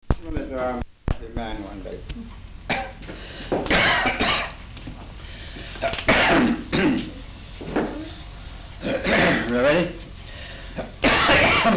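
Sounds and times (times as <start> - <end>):
speech: 0.5 - 0.8, 1.4 - 3.3
person clearing throat: 2.7 - 4.6, 5.8 - 7.2, 8.8 - 9.5, 10.8 - 11.7
person coughing: 2.7 - 4.6, 5.8 - 7.2, 8.8 - 9.5, 10.8 - 11.7.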